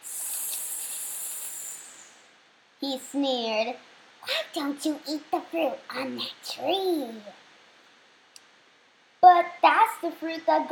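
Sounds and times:
snake hissing: 0.0s - 2.3s
speech: 2.8s - 7.4s, 10.0s - 10.6s.

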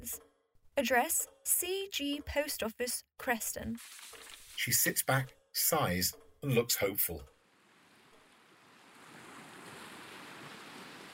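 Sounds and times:
speech: 0.0s - 0.2s, 0.8s - 7.3s
sea waves washing onto a beach: 7.5s - 11.1s.

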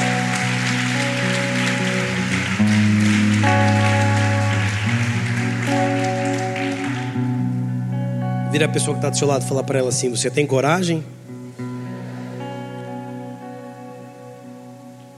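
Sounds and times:
audience applauding to praise God: 0.0s - 7.6s
speech: 8.6s - 11.2s.

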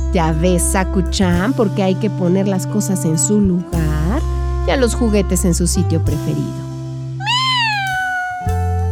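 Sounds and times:
speech: 0.1s - 6.7s
cat meowing: 7.2s - 8.9s.

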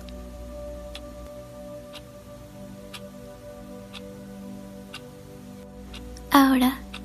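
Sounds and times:
clock ticking: 0.9s - 2.1s, 2.9s - 4.2s, 4.8s - 7.0s
speech: 6.4s - 6.8s.

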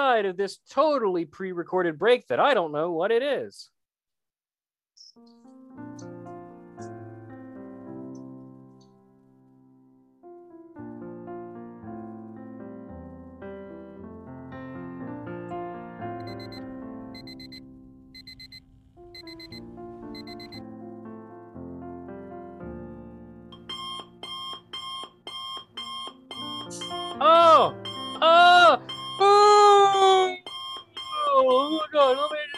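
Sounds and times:
speech: 0.0s - 3.8s
electronic alarm clock ringing: 16.2s - 20.6s, 23.6s - 32.5s.

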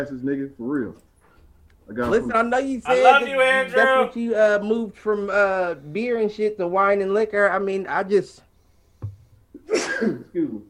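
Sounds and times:
speech: 0.0s - 1.1s, 1.9s - 8.5s, 9.7s - 10.6s
person sneezing: 9.6s - 10.2s.

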